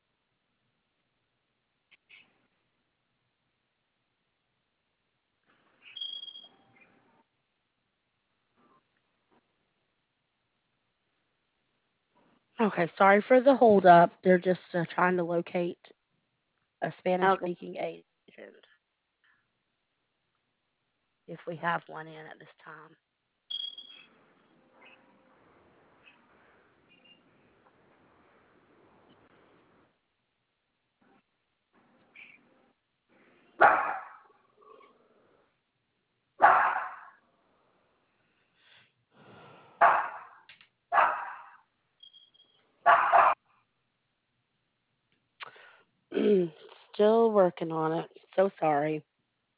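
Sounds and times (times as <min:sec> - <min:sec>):
speech: 0:12.6 - 0:16.0, 0:16.8 - 0:18.7, 0:21.3 - 0:23.0, 0:33.6 - 0:33.9, 0:46.2 - 0:49.1
dog barking: 0:33.6 - 0:34.4, 0:36.4 - 0:37.2, 0:39.8 - 0:41.6, 0:42.8 - 0:43.4.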